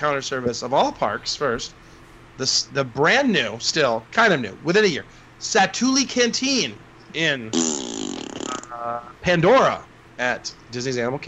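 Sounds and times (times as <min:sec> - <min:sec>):
speech: 0:00.0 - 0:07.9, 0:08.8 - 0:11.2
raspberry blown with the lips: 0:07.5 - 0:09.1.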